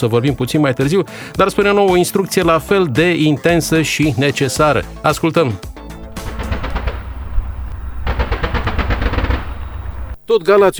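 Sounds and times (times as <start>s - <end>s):
speech: 0.0s - 5.7s, 10.3s - 10.7s
automatic gunfire from a military firing exercise: 6.0s - 10.3s
low rumble: 6.0s - 10.3s.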